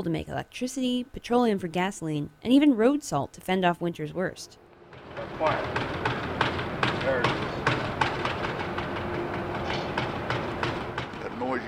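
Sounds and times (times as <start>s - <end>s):
speech: 0.0s - 4.6s, 5.2s - 6.0s, 7.1s - 7.4s
ropes and cables creaking and knocking on a barge pushed by a towboat: 4.9s - 11.6s.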